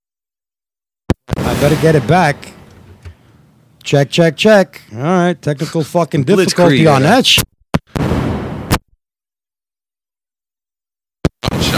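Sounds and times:
gunshot-like bangs: 1.3s - 2.7s, 7.9s - 8.8s
speech: 1.5s - 2.5s, 3.8s - 7.5s.

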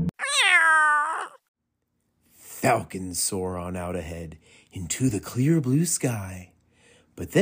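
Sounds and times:
grumpy cat meowing: 0.2s - 1.4s
speech: 2.9s - 6.5s, 7.2s - 7.3s.

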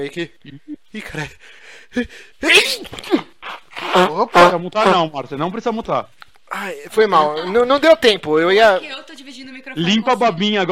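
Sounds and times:
speech: 0.0s - 10.6s
person sneezing loudly: 2.0s - 4.3s.

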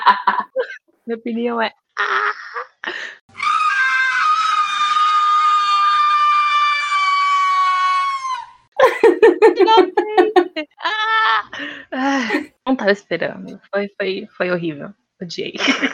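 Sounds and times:
laughter: 0.0s - 0.8s, 8.8s - 12.5s
speech: 0.1s - 0.3s, 1.1s - 3.2s, 12.1s - 15.9s
cartoon character screaming: 3.3s - 8.6s.

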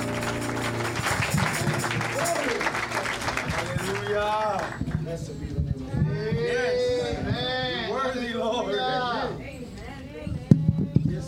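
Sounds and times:
church audience clapping: 0.0s - 5.2s
voices: 0.0s - 11.2s.

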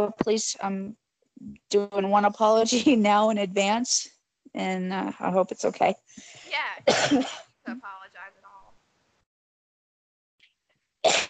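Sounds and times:
speech: 0.0s - 8.0s
sharp harsh cough from a person with COPD: 6.8s - 7.8s, 11.1s - 11.2s.

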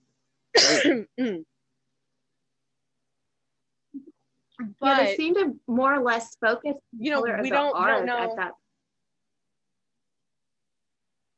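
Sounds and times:
throat clearing: 0.6s - 1.5s
speech: 0.7s - 1.5s, 4.6s - 8.6s.

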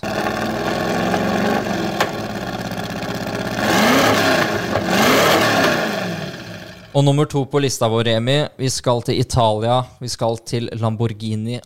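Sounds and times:
Ford GT40 race car engine idling and revving: 0.0s - 7.0s
speech: 7.0s - 11.6s.

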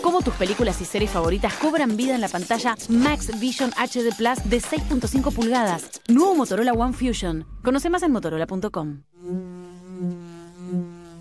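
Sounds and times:
speech: 0.1s - 10.1s
bee buzzing: 9.2s - 11.1s.

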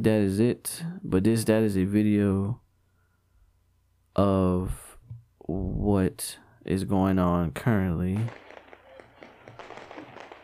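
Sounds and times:
speech: 0.0s - 2.6s, 4.2s - 4.8s, 5.5s - 8.4s
fireworks crackling and banging: 8.1s - 10.4s.

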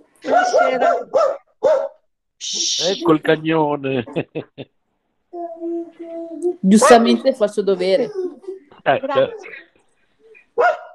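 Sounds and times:
dog barking: 0.2s - 2.1s, 6.8s - 7.2s, 10.6s - 10.9s
speech: 0.5s - 4.8s, 5.4s - 9.6s.

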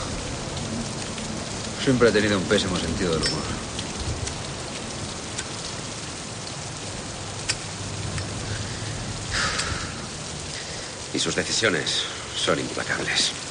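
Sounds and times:
heavy rain falling: 0.0s - 13.4s
speech: 1.8s - 3.7s, 11.2s - 13.4s.

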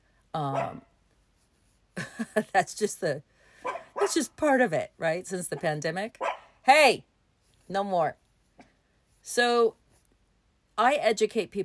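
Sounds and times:
speech: 0.4s - 0.9s, 2.2s - 3.3s, 4.1s - 7.1s, 7.7s - 8.2s, 9.2s - 9.8s, 10.8s - 11.6s
dog barking: 0.5s - 0.8s, 3.6s - 4.2s, 6.2s - 6.6s.

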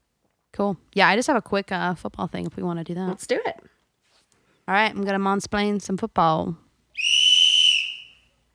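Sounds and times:
speech: 0.6s - 3.7s, 4.7s - 7.2s
shrill whistle blast: 7.0s - 8.3s.

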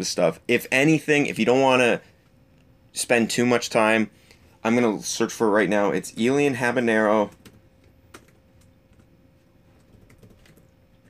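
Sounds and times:
speech: 0.0s - 2.1s, 3.0s - 7.4s
typing on a computer keyboard: 7.3s - 9.1s, 9.8s - 11.0s.

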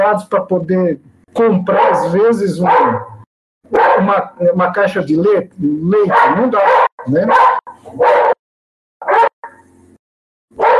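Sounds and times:
speech: 0.0s - 8.3s
dog barking: 1.6s - 4.4s, 6.0s - 8.4s, 9.0s - 9.7s, 10.6s - 10.7s.

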